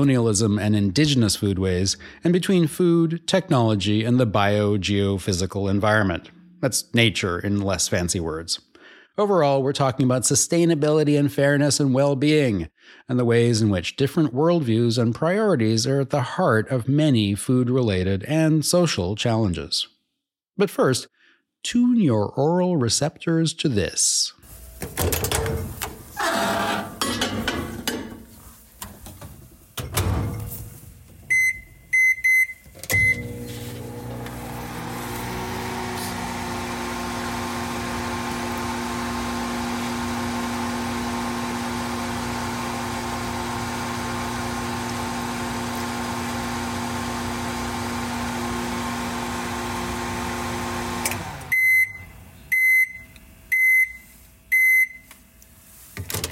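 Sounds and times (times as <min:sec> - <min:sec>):
speech: 0:00.0 - 0:20.0, 0:20.6 - 0:26.7
microwave oven humming while heating leftover pasta: 0:24.5 - 0:53.9
microwave oven sharp beeps: 0:24.8 - 0:27.9, 0:31.3 - 0:55.1
microwave oven door clunk: 0:29.8 - 0:30.5
microwave oven keypad beeps: 0:31.3 - 0:33.3, 0:51.5 - 0:55.0.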